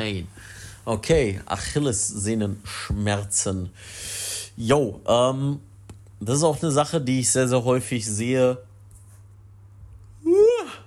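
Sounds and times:
speech: 0:00.0 - 0:08.7
faint low hum: 0:00.0 - 0:10.8
person yawning: 0:10.2 - 0:10.8.

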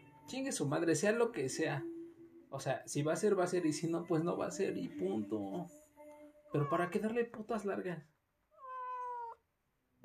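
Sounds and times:
speech: 0:00.3 - 0:01.9, 0:02.5 - 0:05.8, 0:06.5 - 0:08.2
cat meowing: 0:06.5 - 0:07.0, 0:08.5 - 0:09.4.

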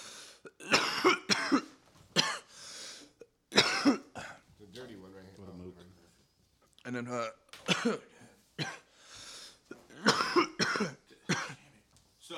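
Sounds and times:
person coughing harshly: 0:00.5 - 0:04.4, 0:07.6 - 0:08.9, 0:09.7 - 0:11.7
speech: 0:06.9 - 0:08.1.

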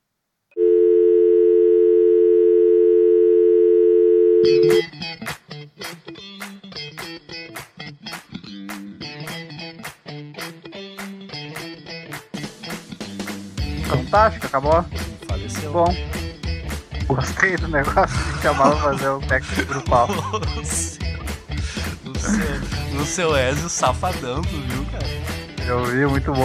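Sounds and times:
telephone busy tone after caller hangs up: 0:00.6 - 0:04.8
rhythmic music with sharp percussive hits: 0:05.2 - 0:26.4
speech: 0:14.1 - 0:16.2, 0:17.1 - 0:21.0, 0:22.3 - 0:26.4
laughter: 0:17.2 - 0:23.7.

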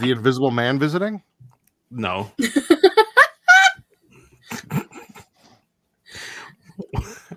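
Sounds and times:
speech: 0:00.0 - 0:01.3, 0:01.9 - 0:02.7
laughter: 0:02.4 - 0:03.8, 0:04.5 - 0:05.2, 0:06.7 - 0:07.3
person coughing and choking: 0:04.5 - 0:05.1, 0:06.8 - 0:07.3
raspy gasping breath: 0:06.1 - 0:06.7.

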